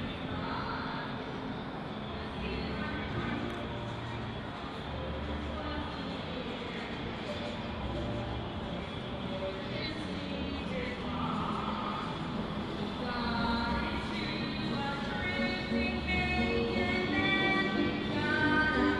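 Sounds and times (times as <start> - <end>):
dense crowd of overlapping voices on an evening street: 0.0 - 18.9
low rumble of traffic: 0.0 - 18.9.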